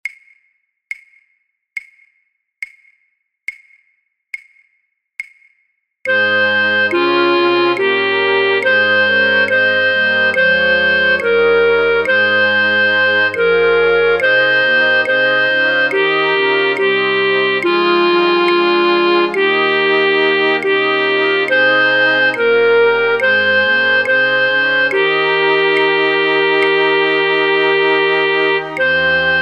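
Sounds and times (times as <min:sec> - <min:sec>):
flute choir playing: 0:06.1 - 0:29.4.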